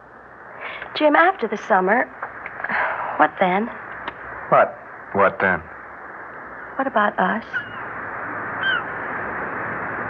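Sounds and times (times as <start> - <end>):
steady hissing wash of noise: 0.0 - 10.0
speech: 1.0 - 2.2, 3.2 - 3.8, 4.5 - 5.7, 6.8 - 7.6
seagull crying: 7.5 - 7.9, 8.6 - 8.9.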